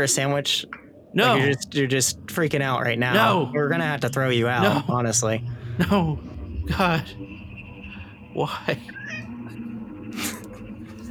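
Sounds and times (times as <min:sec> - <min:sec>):
speech: 0:00.0 - 0:07.4, 0:08.4 - 0:09.2
steady low hum: 0:00.0 - 0:11.0
cat meowing and yowling: 0:08.9 - 0:09.3.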